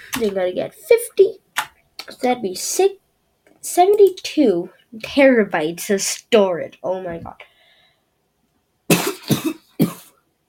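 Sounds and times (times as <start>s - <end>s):
speech: 0.2s - 1.4s, 2.1s - 3.0s, 3.6s - 7.5s
person coughing: 8.9s - 10.2s.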